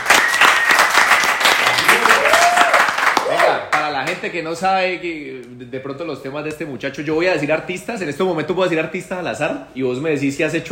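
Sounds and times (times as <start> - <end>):
people whooping and cheering: 0.0 - 3.7
dense applause from a group: 0.0 - 4.2
speech: 4.2 - 10.7.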